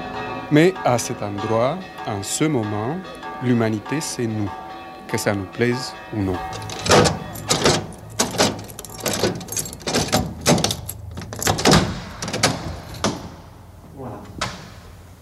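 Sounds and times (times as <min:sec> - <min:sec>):
speech: 0:00.5 - 0:07.1
voices: 0:00.5 - 0:13.1
door being shut and locked with bolt turned: 0:06.4 - 0:13.4.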